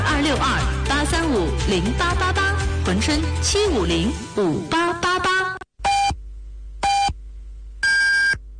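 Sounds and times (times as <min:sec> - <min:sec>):
speech: 0:00.3 - 0:05.0
faint hum: 0:05.4 - 0:08.5.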